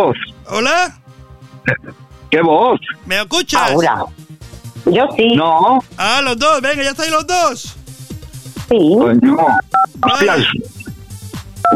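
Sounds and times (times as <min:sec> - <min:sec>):
speech: 0:00.0 - 0:01.0, 0:01.6 - 0:04.2, 0:04.8 - 0:07.8, 0:08.7 - 0:10.8
telephone keypad buttons pressed with dial-tone beeps: 0:09.5 - 0:10.5.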